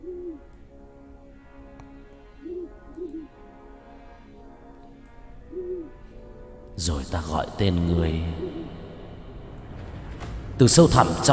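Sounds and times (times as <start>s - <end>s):
barn owl hooting at night: 0.0s - 0.5s, 2.4s - 3.3s, 5.5s - 6.0s, 7.9s - 9.4s
steady low droning background: 0.0s - 11.3s
speech: 6.8s - 8.5s, 10.6s - 11.3s.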